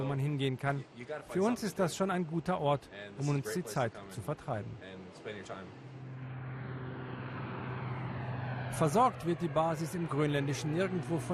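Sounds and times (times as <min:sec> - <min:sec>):
speech: 0:00.0 - 0:05.9, 0:08.7 - 0:11.3
transport aircraft engine roar at an air base in Greenland: 0:05.1 - 0:11.3
low droning hum: 0:05.8 - 0:11.3.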